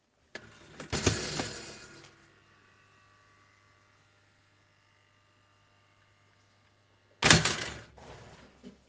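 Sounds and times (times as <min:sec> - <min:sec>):
toaster: 0:00.4 - 0:02.4, 0:07.2 - 0:07.9.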